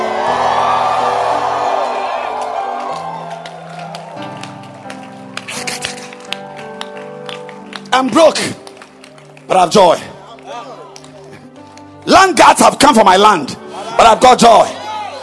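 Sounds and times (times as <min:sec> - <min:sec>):
audience shouting and cheering with whoops and yells: 0:00.0 - 0:04.7, 0:13.8 - 0:15.2
scattered claps and hand taps: 0:02.4 - 0:11.8
speech: 0:08.0 - 0:08.6, 0:09.5 - 0:10.1, 0:12.1 - 0:14.8.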